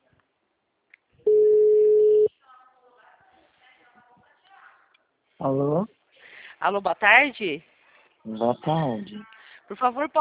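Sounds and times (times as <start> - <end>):
telephone tone on an outgoing call: 1.3 - 2.3
speech: 5.4 - 6.0, 6.6 - 10.1.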